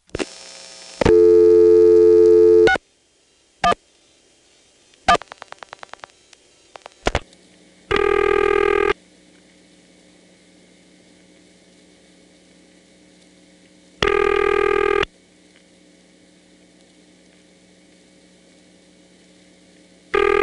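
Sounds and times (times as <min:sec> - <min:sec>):
loud steady tone of a touchtone phone call: 0:01.1 - 0:02.8, 0:07.9 - 0:09.0, 0:14.0 - 0:15.1, 0:20.1 - 0:20.4.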